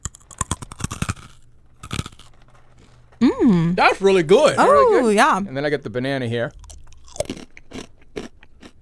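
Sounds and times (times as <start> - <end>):
crunching on a crunchy pineapple snack: 0.0 - 3.2, 6.5 - 8.8
speech: 3.4 - 6.6.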